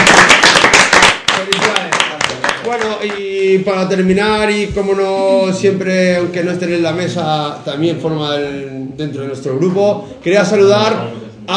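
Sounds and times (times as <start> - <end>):
applause from a small group: 0.0 - 3.3
speech: 2.8 - 11.5.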